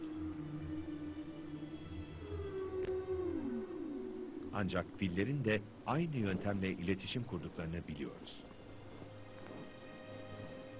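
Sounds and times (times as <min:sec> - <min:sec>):
low drawn-out tonal calls resembling a whale's moaning song: 0:00.0 - 0:05.4
speech: 0:04.5 - 0:08.5.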